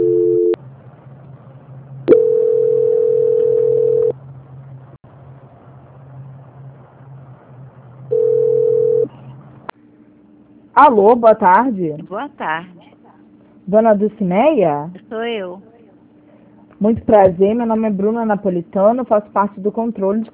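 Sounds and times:
telephone line beeps during call transfer: 0.0s - 0.6s, 2.1s - 4.1s
low hum: 0.0s - 20.3s
speech: 10.8s - 12.8s, 13.7s - 15.7s, 16.8s - 20.3s.

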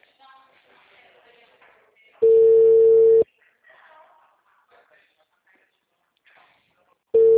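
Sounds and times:
telephone ringback tone while a call connects: 2.2s - 3.2s, 7.2s - 7.3s.

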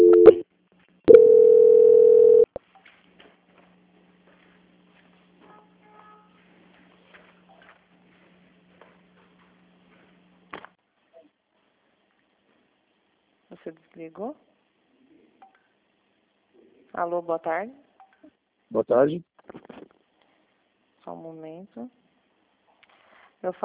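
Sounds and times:
telephone call transfer tone beeps: 0.0s - 0.4s, 1.1s - 2.5s
speech: 13.7s - 14.5s, 17.0s - 17.8s, 18.7s - 19.3s, 21.1s - 22.0s, 23.4s - 23.6s.

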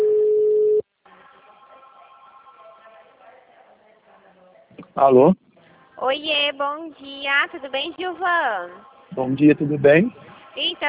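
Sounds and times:
steady telephone line tone: 0.0s - 0.8s
speech: 5.0s - 5.4s, 6.0s - 10.8s.

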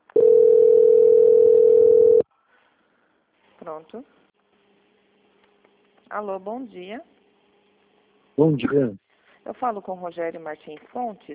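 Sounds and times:
telephone line tone while a call is transferred: 0.1s - 2.2s
speech: 3.7s - 4.2s, 6.1s - 7.2s, 8.4s - 11.3s.

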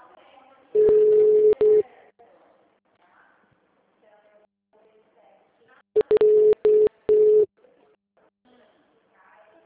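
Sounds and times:
telephone ringback tone on an outgoing call to a client: 0.8s - 1.8s, 6.0s - 7.5s.

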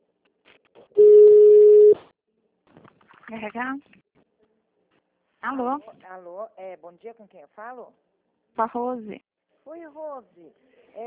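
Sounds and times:
steady telephone tone as a call is transferred to another line: 1.0s - 2.0s
speech: 3.3s - 4.0s, 5.4s - 11.0s.

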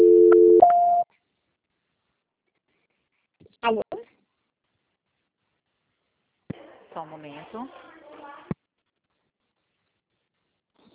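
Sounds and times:
telephone call transfer tone: 0.0s - 1.0s
speech: 3.6s - 4.0s, 7.0s - 7.9s.

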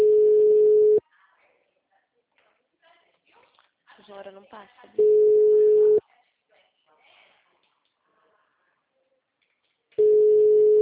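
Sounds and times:
telephone ringback tone for an unanswered call: 0.0s - 1.0s, 5.0s - 6.0s, 10.0s - 10.7s
speech: 4.2s - 5.6s.

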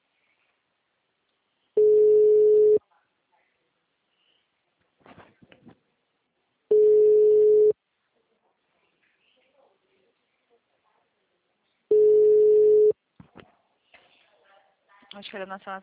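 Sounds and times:
ringback tone of an unanswered telephone call: 1.8s - 2.8s, 6.7s - 7.7s, 11.9s - 12.9s
speech: 15.2s - 15.8s.

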